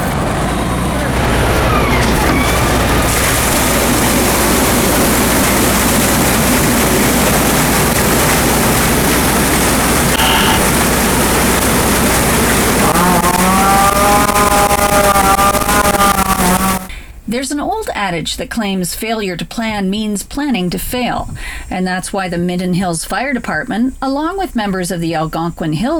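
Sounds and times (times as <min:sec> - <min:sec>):
fire tanker truck heavy engine roaring: 0:00.0 - 0:16.9
water rushing from fire tanker truck: 0:02.7 - 0:13.2
tonal voice-like sound: 0:10.1 - 0:10.8, 0:12.8 - 0:16.9
speech: 0:18.0 - 0:25.9.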